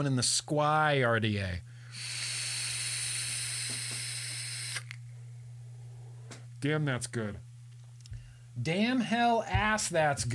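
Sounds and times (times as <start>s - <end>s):
speech: 0.0s - 2.2s, 6.6s - 7.5s, 8.6s - 10.3s
low electrical hum: 0.0s - 10.3s
Twisted Timmy's vape coil firing with sizzling hiss and crackles: 1.9s - 5.2s.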